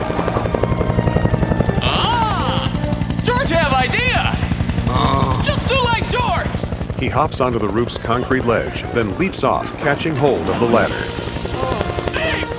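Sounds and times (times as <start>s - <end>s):
helicopter hovering by a rooftop: 0.0s - 12.5s
raised voices calling out: 1.6s - 6.6s, 8.0s - 12.5s
speech: 7.0s - 11.2s.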